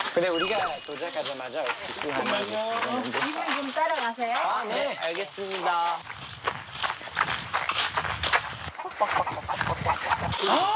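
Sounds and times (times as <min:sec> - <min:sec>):
footsteps: 0:00.0 - 0:10.7
speech: 0:00.2 - 0:06.6, 0:09.0 - 0:10.7
chicken clucking at a corn field: 0:08.7 - 0:10.4.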